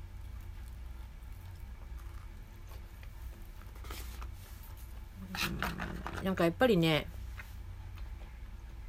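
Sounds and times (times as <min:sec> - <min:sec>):
person chewing takoyaki: 0:00.0 - 0:06.0
low hum: 0:00.0 - 0:08.8
speech: 0:05.5 - 0:07.2.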